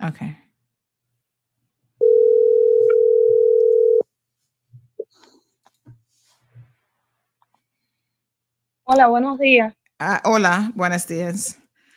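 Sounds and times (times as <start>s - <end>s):
speech: 0.0s - 0.4s, 8.9s - 11.6s
telephone ringback tone while placing a call: 2.0s - 4.0s.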